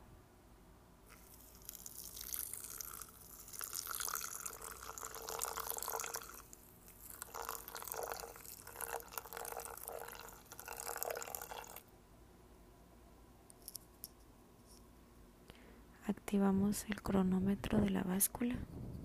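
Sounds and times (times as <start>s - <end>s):
hot water poured in a thin stream onto coffee grounds: 1.1s - 11.8s
speech: 16.1s - 18.8s.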